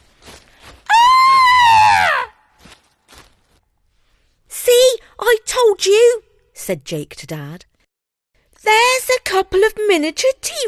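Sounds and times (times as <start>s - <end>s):
loud high-pitched scream: 0.9s - 2.5s
speech: 5.8s - 7.7s, 8.7s - 10.6s.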